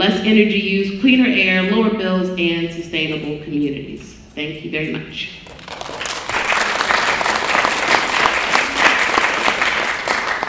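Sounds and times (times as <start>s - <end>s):
speech: 0.0s - 6.0s
audience applause after a speech: 5.5s - 10.4s.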